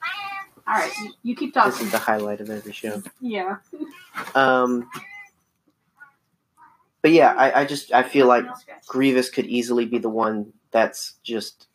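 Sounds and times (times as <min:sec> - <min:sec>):
cat chirping: 0:00.0 - 0:01.1, 0:04.6 - 0:05.4
cat meowing: 0:00.0 - 0:01.1, 0:04.8 - 0:05.3
speech: 0:00.7 - 0:05.0, 0:07.0 - 0:11.7.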